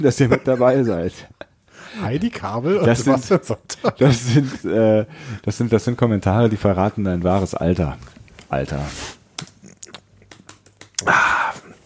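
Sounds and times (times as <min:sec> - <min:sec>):
speech: 0:00.0 - 0:09.2
person typing on a computer keyboard to log in: 0:10.2 - 0:11.0.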